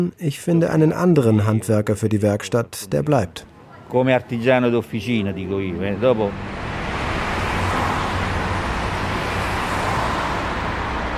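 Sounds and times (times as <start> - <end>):
speech: 0.0 - 6.6
cars rushing along a busy city street: 3.4 - 11.1.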